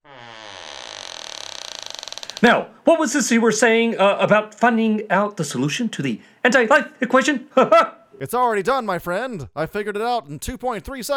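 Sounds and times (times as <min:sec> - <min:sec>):
door creaking open with groaning hinge: 0:00.0 - 0:02.5
speech: 0:02.4 - 0:11.1.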